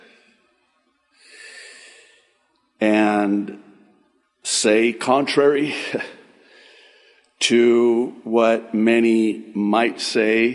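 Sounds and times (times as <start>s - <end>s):
person catching their breath: 1.2s - 2.3s, 6.0s - 7.4s
speech: 2.8s - 3.6s, 4.6s - 6.2s, 7.5s - 10.5s.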